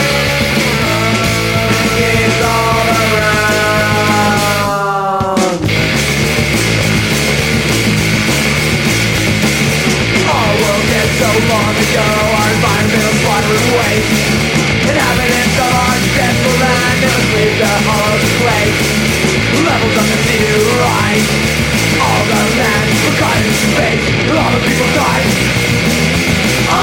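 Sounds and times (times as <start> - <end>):
shouted vocals in a fast punk rock song: 0.0 - 5.7, 10.2 - 14.2, 14.9 - 25.6, 26.5 - 26.8
dense distorted guitars in a fast punk rock song: 0.0 - 26.8
pounding drums in a fast punk rock song: 0.0 - 26.8.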